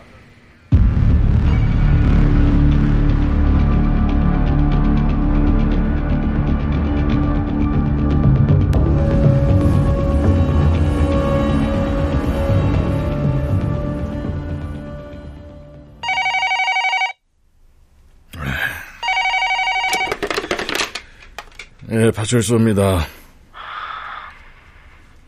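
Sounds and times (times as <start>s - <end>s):
dense music: 0.7s - 16.0s
electronic telephone ringing: 16.0s - 17.2s, 19.0s - 20.9s
breathy sound: 18.3s - 19.1s, 23.1s - 25.2s
speech: 22.1s - 23.2s.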